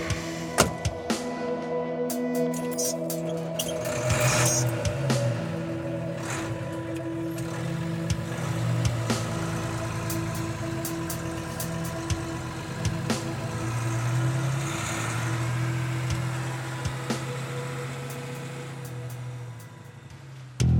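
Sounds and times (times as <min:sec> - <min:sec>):
car engine droning at full speed across dry riverbeds on a cool night: 0:00.0 - 0:20.7.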